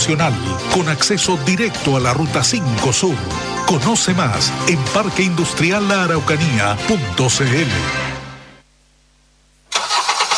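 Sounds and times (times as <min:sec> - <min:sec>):
speech: 0:00.0 - 0:08.1
car engine starting: 0:09.7 - 0:10.3.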